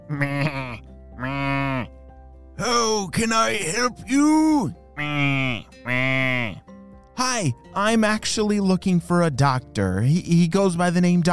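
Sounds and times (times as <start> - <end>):
speech: 0.1 - 0.5, 3.2 - 6.6, 7.2 - 11.3
goat bleating: 0.1 - 1.9, 5.0 - 6.6.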